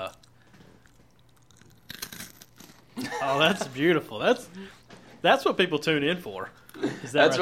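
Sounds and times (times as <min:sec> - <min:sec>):
close-miked crunchy chewing: 0:00.0 - 0:03.0
speech: 0:03.2 - 0:07.3.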